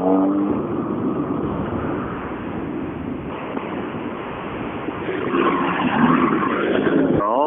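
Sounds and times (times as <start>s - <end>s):
rally car engine revving and roaring as it pulls away from the start: 0.0s - 3.4s, 4.8s - 7.3s.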